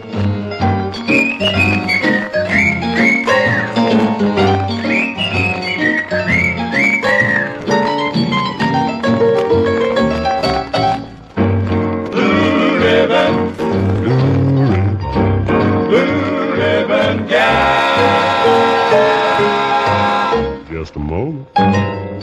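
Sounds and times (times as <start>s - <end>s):
full band accompaniment: 0.0s - 22.2s
man whistling a bright gliding melody: 0.9s - 7.8s.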